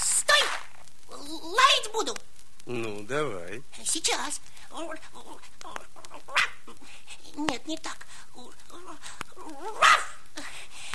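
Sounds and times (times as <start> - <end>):
speech: 1.8 - 10.0
puppy barking: 9.8 - 10.2.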